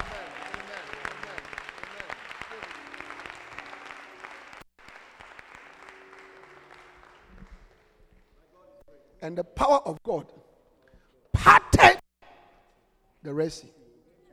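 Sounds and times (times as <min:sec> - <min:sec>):
murmur of voices: 0:00.0 - 0:04.2
audience clapping during a sermon: 0:00.0 - 0:08.3
speech: 0:09.2 - 0:10.4, 0:13.2 - 0:13.8.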